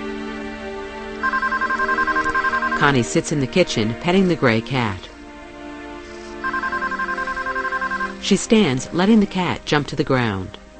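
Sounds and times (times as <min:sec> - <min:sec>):
telephone ringing in a kitchen: 0:01.2 - 0:03.1, 0:06.4 - 0:08.2
speech: 0:02.8 - 0:05.1, 0:08.2 - 0:10.6.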